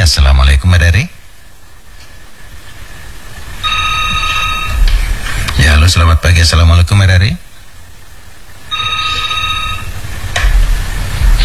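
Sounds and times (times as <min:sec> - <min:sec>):
speech: 0:00.0 - 0:01.2, 0:05.6 - 0:07.4
low hum: 0:00.0 - 0:11.4
telephone ringing on a phone-in call: 0:03.6 - 0:05.8, 0:08.6 - 0:10.8.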